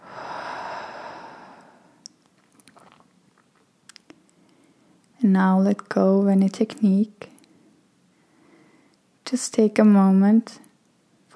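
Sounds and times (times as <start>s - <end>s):
long exhaled breath during a guided breathing exercise: 0.0s - 2.0s
speech: 5.2s - 7.3s, 9.3s - 10.6s.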